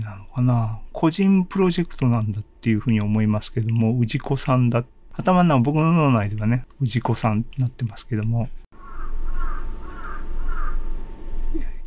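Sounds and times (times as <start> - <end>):
speech: 0.1 - 8.6
crow cawing outside as the weather turns cold: 8.8 - 10.9.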